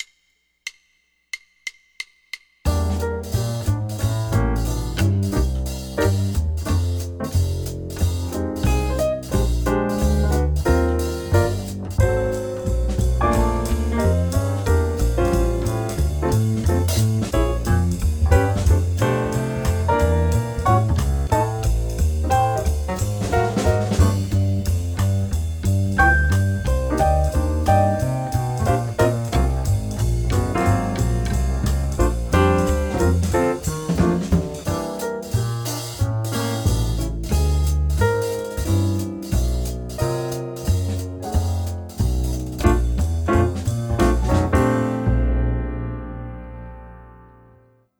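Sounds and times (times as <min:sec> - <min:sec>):
swing jazz guitar play along: 0:02.7 - 0:46.8.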